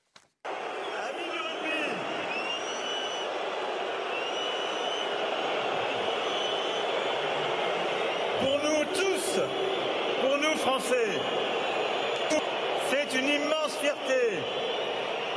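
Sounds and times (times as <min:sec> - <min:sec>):
huge stadium crowd roaring in disapproval at the Rugby World Cup in France: 0:00.5 - 0:15.3
shrill whistles from stadium crowd: 0:00.6 - 0:12.6, 0:13.8 - 0:15.3
speech: 0:10.8 - 0:11.6, 0:13.1 - 0:14.8.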